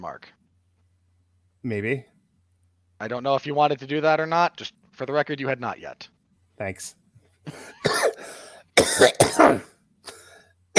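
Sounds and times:
speech: 0.0 - 0.4, 1.6 - 2.1, 3.0 - 9.7
person coughing harshly: 7.5 - 10.7
throat clearing: 8.8 - 10.7.

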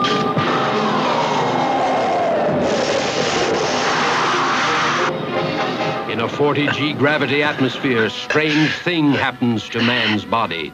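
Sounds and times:
aircraft engine whine gliding downward in pitch: 0.0 - 7.4
aircraft coming in to land: 0.0 - 10.2
speech: 6.4 - 10.7.

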